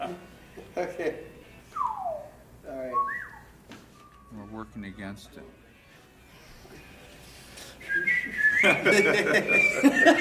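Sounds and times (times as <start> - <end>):
laughter: 0.0 - 1.4, 7.9 - 10.1
speech: 0.8 - 1.3, 4.3 - 5.6, 7.9 - 10.1
person whistling a sustained wavering tune: 1.7 - 2.3, 2.9 - 4.7, 7.8 - 10.1
breathy noise: 5.9 - 8.0.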